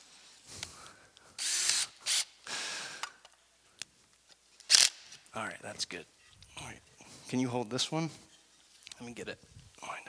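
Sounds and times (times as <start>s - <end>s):
power drill whirring: 1.4s - 2.4s
speech: 5.4s - 8.3s, 9.0s - 10.0s.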